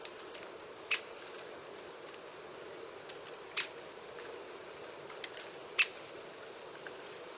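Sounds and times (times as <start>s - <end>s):
steady low background hiss: 0.0s - 7.3s
Great spotted woodpecker giving sharp short kik notes: 0.8s - 1.5s, 3.5s - 3.8s, 5.7s - 6.0s.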